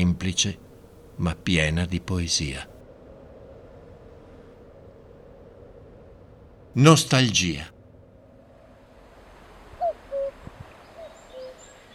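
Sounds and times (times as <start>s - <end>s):
speech: 0.0s - 2.7s, 6.8s - 7.7s
cuckoo calling two-note cu-coo: 9.8s - 11.9s.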